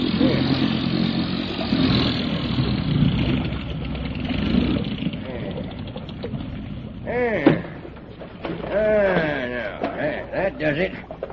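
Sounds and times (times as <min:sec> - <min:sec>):
motorboat engine droning: 0:00.0 - 0:11.3
voices calling out: 0:05.0 - 0:11.3
speech: 0:10.6 - 0:11.3.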